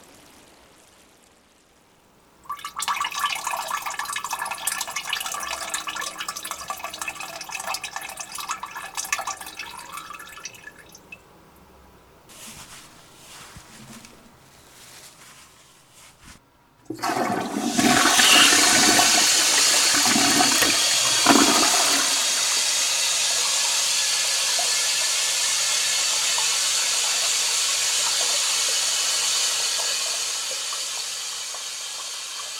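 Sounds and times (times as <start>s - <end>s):
toilet flushing in a house: 2.5s - 11.0s, 16.9s - 32.5s.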